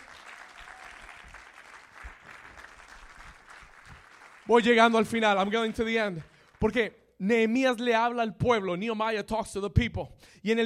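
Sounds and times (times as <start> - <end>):
crowd applauding loudly in a large space: 0.0 - 6.8
speech: 4.5 - 10.6.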